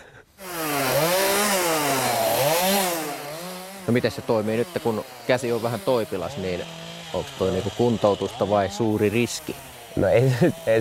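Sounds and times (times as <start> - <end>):
chainsaw running during forestry work: 0.4 - 10.8
speech: 3.9 - 10.8.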